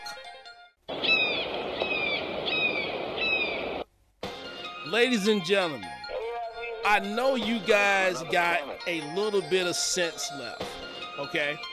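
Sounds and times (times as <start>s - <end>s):
hawk calling: 0.9s - 3.8s
speech: 4.9s - 6.0s, 6.8s - 11.7s.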